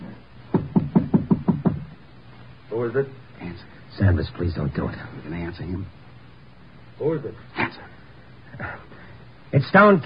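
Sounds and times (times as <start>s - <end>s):
quick knocking on a flat door: 0.5s - 1.9s
speech: 2.8s - 6.0s, 7.0s - 7.9s, 8.6s - 8.9s, 9.5s - 10.0s.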